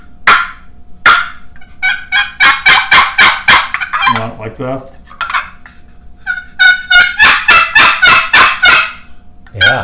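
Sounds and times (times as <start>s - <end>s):
raspy turkey clucks on a wooden box call run backwards: 0.2s - 4.4s, 5.2s - 5.6s, 6.2s - 9.8s
speech: 4.2s - 5.0s, 9.5s - 9.8s.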